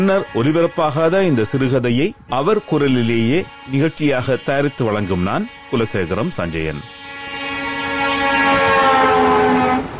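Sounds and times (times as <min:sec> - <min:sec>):
speech: 0:00.0 - 0:07.0
passenger train horn approaching a station: 0:00.0 - 0:09.9
passenger train rumbling approaching a station: 0:04.4 - 0:09.9.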